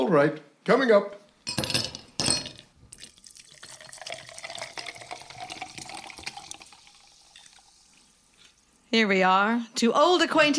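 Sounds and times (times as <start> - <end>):
speech: 0.1 - 1.7, 8.9 - 10.5
sparkling mineral water pouring into a glass: 2.9 - 8.8
short bursts of fizz from sparkling mineral water: 3.0 - 9.0.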